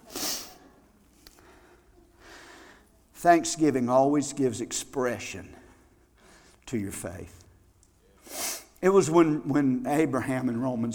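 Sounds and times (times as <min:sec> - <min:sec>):
person sniffing through the nose: 0:00.0 - 0:00.6, 0:08.2 - 0:08.8
speech: 0:03.2 - 0:05.6, 0:06.7 - 0:07.4, 0:08.8 - 0:10.9.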